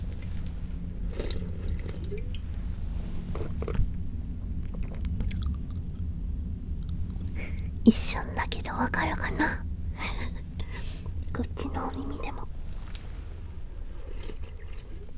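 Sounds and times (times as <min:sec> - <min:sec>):
carbonated drink fizz crackling in open mouth: 0:00.0 - 0:07.7, 0:10.7 - 0:15.1
low steady hum: 0:00.0 - 0:15.1
speech: 0:07.9 - 0:09.6.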